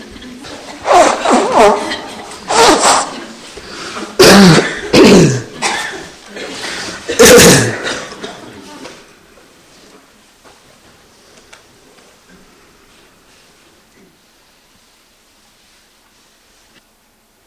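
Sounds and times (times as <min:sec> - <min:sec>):
loud breathy nose blowing before a meditation session: 0:00.8 - 0:05.5.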